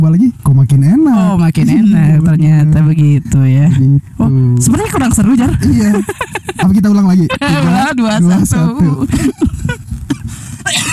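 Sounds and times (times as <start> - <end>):
voices: 0.0 - 9.8
laughter: 4.8 - 10.9
person coughing: 9.0 - 10.9
throat clearing: 9.0 - 10.9.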